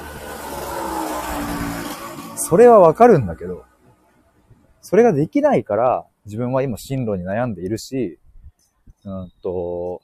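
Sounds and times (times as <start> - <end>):
motorbike passing by: 0.0 - 4.0
speech: 2.5 - 3.7, 4.8 - 8.2, 9.0 - 10.0.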